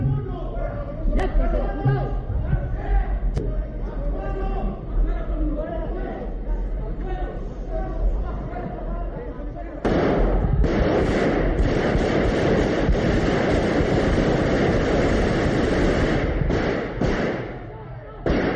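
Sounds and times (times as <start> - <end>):
voices in a parliament chamber during an investiture session: 0.0 - 11.6, 16.2 - 18.5
gunshots fired in parliament chamber: 9.8 - 18.5.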